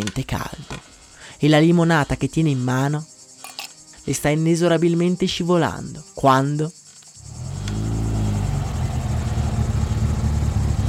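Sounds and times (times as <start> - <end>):
faint high insect-like buzz: 0.0 - 9.9
speech: 0.1 - 0.6, 1.4 - 3.1, 4.0 - 6.8
car engine starting up and rumbling: 7.2 - 10.8.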